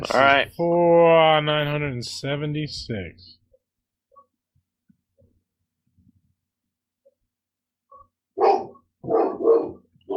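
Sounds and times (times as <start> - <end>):
speech: 0.0 - 3.4
dogs barking outside: 7.9 - 10.1.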